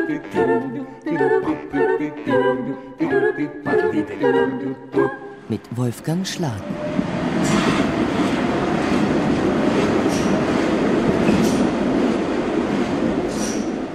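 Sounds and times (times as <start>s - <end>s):
speech: 0.1s - 7.8s
train rumbling from Mostar to Sarajevo in Bosnia-Herzegovina heard from inside a carriage: 4.9s - 13.9s
train wheel noise: 6.4s - 13.9s.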